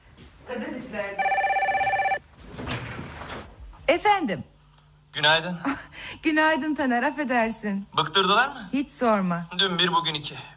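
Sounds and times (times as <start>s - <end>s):
speech: 0.9s - 1.3s, 4.1s - 4.5s, 5.2s - 10.5s
telephone ringing in a trilling electronic burst: 1.2s - 2.2s.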